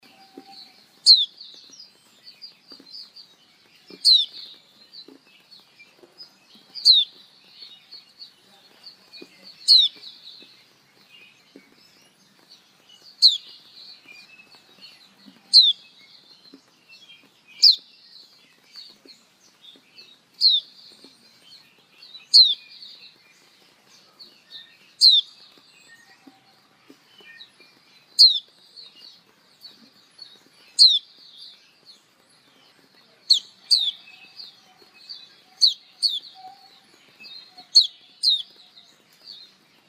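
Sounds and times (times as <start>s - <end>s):
pleci betina bird singing: 0.0s - 39.8s.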